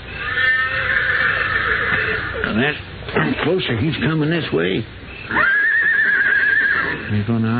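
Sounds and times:
horse whinnying: 0.0 - 2.8, 5.2 - 7.1
speech: 2.6 - 5.5, 7.1 - 7.5.

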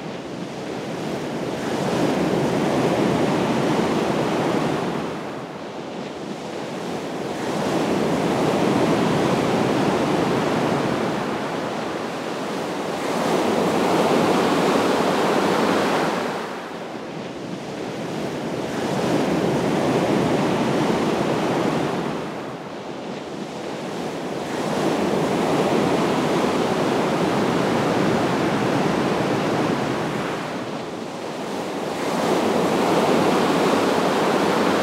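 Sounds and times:
rough surf crashing against the shore: 0.0 - 34.8
wind: 0.0 - 34.8.

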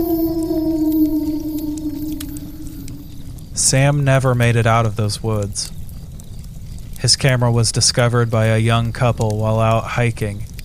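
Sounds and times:
creature howling into the night: 0.0 - 3.5
low rumbling background: 0.0 - 6.0
speech: 3.6 - 5.8, 7.0 - 10.5.

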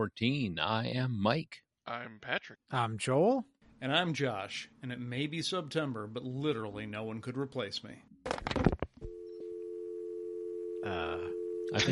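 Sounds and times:
speech: 0.0 - 8.4, 10.8 - 11.9
telephone receiver being handled: 8.2 - 9.1
telephone dial tone: 9.0 - 11.7.

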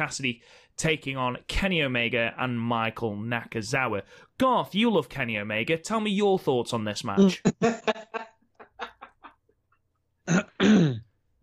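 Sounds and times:
speech: 0.0 - 8.1
laughter: 7.4 - 9.5
man clearing his throat: 10.3 - 11.2.

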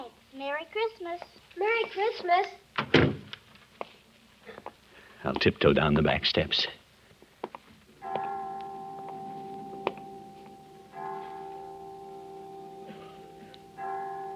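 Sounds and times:
speech: 0.5 - 3.2, 5.2 - 6.8
clock chimes striking: 8.0 - 14.3.

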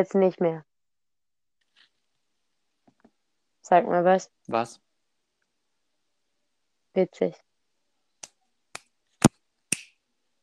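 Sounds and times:
speech: 0.0 - 0.7, 3.6 - 4.8, 7.0 - 7.5
sharp finger snaps: 8.2 - 10.0.

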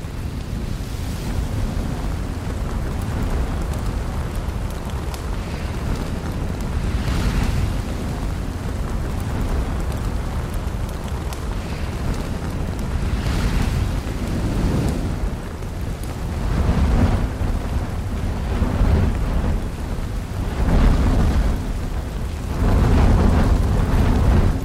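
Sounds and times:
hissing surges of crackling flame: 0.0 - 24.6
lava fire deep continuous roar: 0.0 - 24.6.

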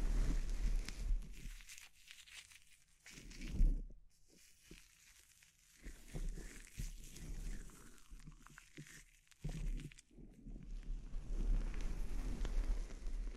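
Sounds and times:
crackly bright scratching in a scalp treatment: 0.0 - 13.3
scalp treatment rustling and rubbing: 0.0 - 13.3.

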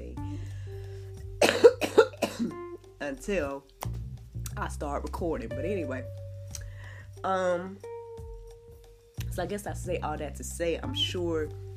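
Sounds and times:
person coughing harshly: 1.4 - 2.6
speech: 3.1 - 3.7, 4.6 - 6.2, 7.2 - 7.9, 9.4 - 11.6.

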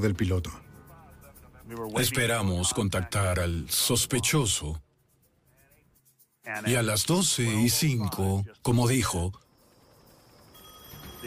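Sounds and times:
speech: 0.0 - 0.7, 1.7 - 4.9, 6.4 - 9.4
telephone ringing with a buzzing bell tone in a phone booth: 9.0 - 11.2.

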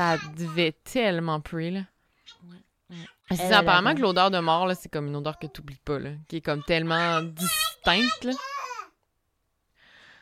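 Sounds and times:
baby babbling: 0.0 - 0.6, 2.2 - 4.6, 6.5 - 9.0
speech: 0.0 - 8.6.

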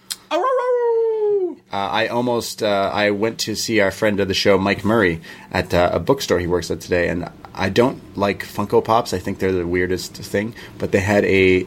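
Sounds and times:
person imitating a howl: 0.3 - 1.6
speech: 1.7 - 11.6.

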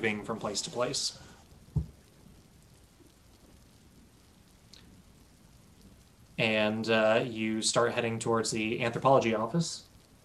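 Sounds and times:
speech: 0.0 - 1.3, 6.4 - 9.9
steady rain pattering: 0.0 - 10.2
brief low thump: 1.7 - 2.0.

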